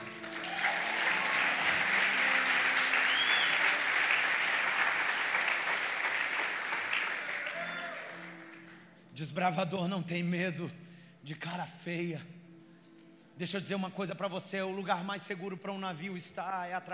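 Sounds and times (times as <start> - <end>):
large audience applauding: 0.0 - 8.9
speech: 9.2 - 12.4, 13.4 - 16.9.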